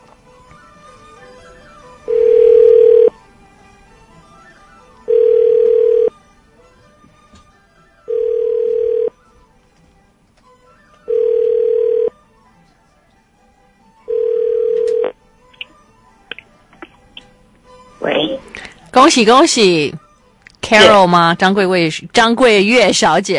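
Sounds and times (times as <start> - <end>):
phone ringback tone: 2.0 - 3.2, 5.0 - 6.2, 8.0 - 9.2, 11.1 - 12.2, 14.1 - 15.2
speech: 19.0 - 20.0, 20.7 - 23.3.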